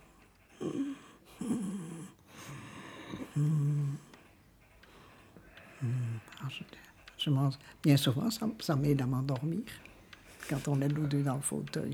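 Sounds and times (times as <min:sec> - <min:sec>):
soft snoring while asleep: 0:00.0 - 0:04.3, 0:05.0 - 0:07.0
speech: 0:06.5 - 0:09.9, 0:10.5 - 0:11.9.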